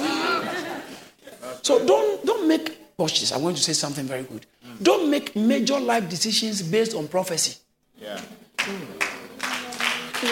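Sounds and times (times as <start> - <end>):
laughter: 0.0 - 1.6
speech: 1.6 - 9.0
scattered clapping from an audience: 8.2 - 10.2.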